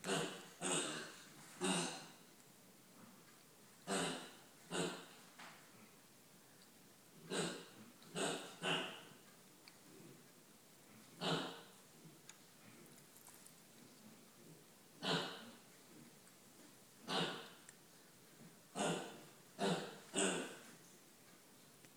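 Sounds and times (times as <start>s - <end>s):
pig oinking continuously: 0.0s - 2.1s, 3.9s - 5.1s, 7.3s - 9.1s, 11.2s - 11.7s, 15.0s - 15.6s, 17.1s - 17.6s, 18.8s - 20.6s.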